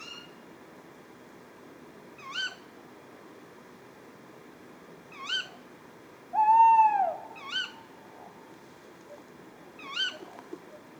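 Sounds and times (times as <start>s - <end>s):
Tawny owl Strix aluco ke-wick calls at Etang de Beaumont, Drôme: 6.4s - 8.4s.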